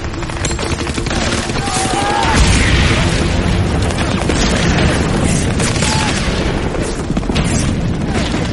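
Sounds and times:
rapid gunfire in battle: 0.0s - 8.5s
Bangalore torpedo explosion: 2.2s - 6.7s.

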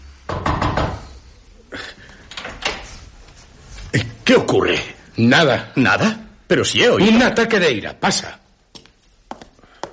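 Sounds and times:
knuckles knocking on a wooden door: 0.3s - 1.0s
speech: 3.9s - 8.4s.

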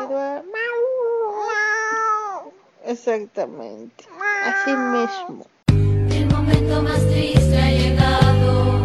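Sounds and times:
person mimicking a cat's meow: 0.0s - 2.6s, 4.1s - 5.5s
speech: 2.9s - 5.9s, 6.5s - 8.7s.

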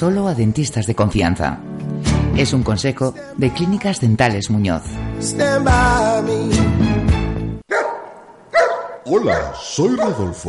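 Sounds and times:
speech: 0.0s - 7.2s, 9.0s - 10.4s
dog barking: 7.7s - 10.4s.

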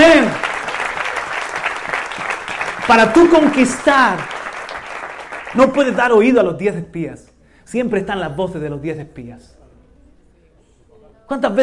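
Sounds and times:
large gathering applauding: 0.0s - 6.1s
speech: 2.9s - 4.4s, 5.5s - 9.6s, 11.3s - 11.6s.

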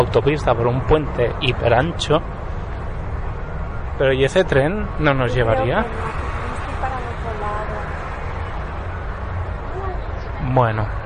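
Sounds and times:
speech: 0.0s - 2.4s, 4.0s - 6.4s, 10.4s - 11.0s
road traffic roar outside a shopping centre: 0.0s - 11.0s.

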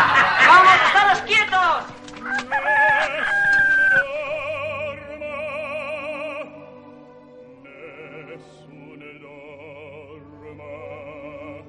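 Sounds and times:
laughter: 0.0s - 1.5s
hen clucking and calling loudly: 2.2s - 4.1s.

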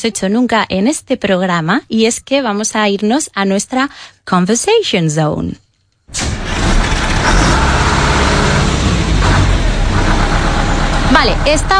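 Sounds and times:
speech: 0.0s - 7.8s, 11.2s - 11.7s
bus engine running: 6.2s - 11.7s.

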